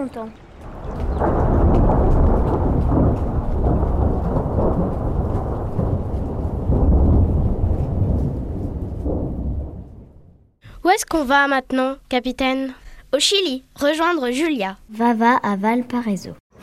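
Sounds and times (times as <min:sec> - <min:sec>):
speech: 0:00.0 - 0:00.4, 0:10.9 - 0:16.4
steady wash of rain: 0:00.0 - 0:10.2
deep continuous thunder rumbling: 0:00.0 - 0:10.6.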